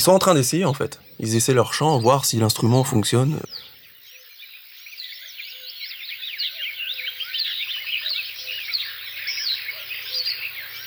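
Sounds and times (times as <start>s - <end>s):
chorus of marsh warblers chattering and trilling: 0.0s - 3.8s
speech: 0.0s - 3.8s.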